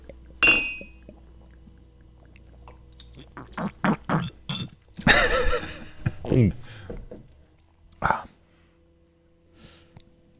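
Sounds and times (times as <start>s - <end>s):
beer glasses clinking in a toast: 0.4s - 1.1s
laughter: 5.0s - 6.5s
speech: 6.3s - 6.8s.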